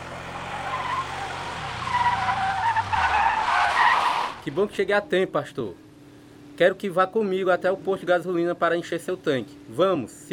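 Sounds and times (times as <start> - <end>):
car tires screeching while skidding to a stop: 0.0 - 4.9
low car engine rumble as the vehicle slows: 0.0 - 4.9
speech: 4.4 - 5.8, 6.6 - 10.3.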